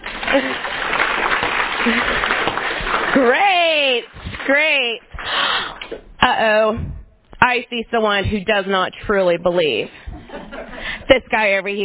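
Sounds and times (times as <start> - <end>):
audience clapping hands loudly: 0.0 - 6.0
speech: 0.4 - 0.7, 1.8 - 2.2, 3.2 - 5.2, 6.3 - 6.9, 7.5 - 10.1, 11.1 - 11.8
laughter: 10.1 - 11.0.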